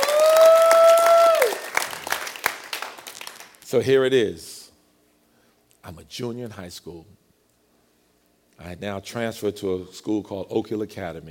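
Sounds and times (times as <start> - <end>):
audience clapping and cheering in praise of God: 0.0 - 3.6
speech: 3.7 - 4.6, 5.8 - 7.2, 8.6 - 11.3.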